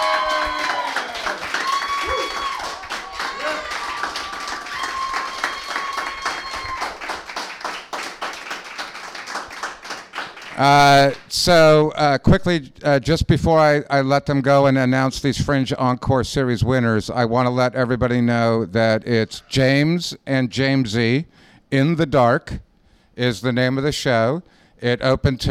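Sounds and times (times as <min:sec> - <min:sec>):
loud cheer: 0:00.0 - 0:07.7
audience applause thanking two guests: 0:00.0 - 0:11.0
speech: 0:10.6 - 0:25.4.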